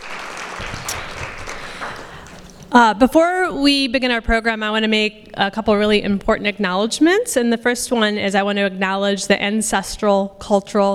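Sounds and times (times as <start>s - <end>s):
audience applause at a human rights forum: 0.0s - 2.6s
speech: 2.8s - 10.9s.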